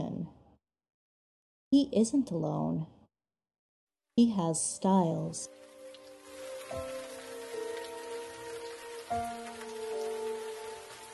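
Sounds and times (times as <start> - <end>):
speech: 1.7 - 3.0, 4.2 - 5.6
sustained low musical tones: 5.4 - 11.1
steady heavy rain downpour: 5.5 - 11.1.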